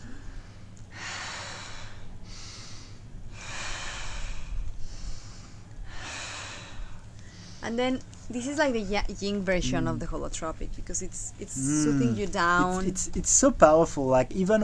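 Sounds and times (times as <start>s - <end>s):
deep belly breathing during a breathwork exercise: 0.0s - 7.7s
speech: 7.7s - 14.6s.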